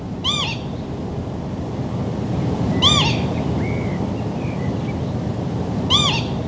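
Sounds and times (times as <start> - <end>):
steady wash of wind or surf noise: 0.0 - 6.4
lapwing giving two-note peewit call in flight: 0.2 - 0.7, 2.7 - 4.0, 5.9 - 6.4.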